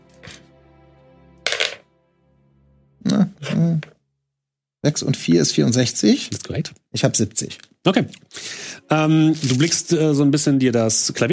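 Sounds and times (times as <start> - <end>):
dice being rolled and clattering: 1.5 - 1.8
speech: 3.5 - 4.0, 4.8 - 11.3.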